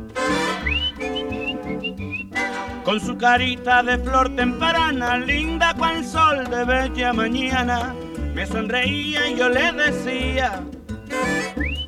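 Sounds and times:
person whistling to call a girl to the window: 0.4 - 2.6, 7.6 - 9.4, 11.2 - 11.8
speech: 2.9 - 10.7.

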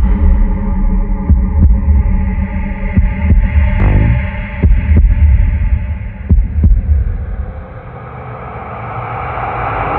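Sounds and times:
deep droning rumble: 0.0 - 9.8
slow heavy heartbeat thumping in double beats: 1.2 - 7.6.

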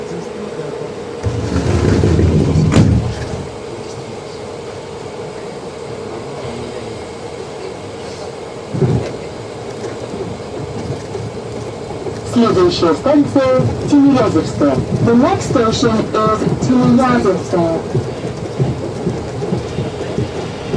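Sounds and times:
metro train pulling out with rumble and mechanical hum: 0.0 - 20.7
metro train doors shutting: 1.2 - 4.0, 8.0 - 20.7
speech: 12.5 - 18.0.

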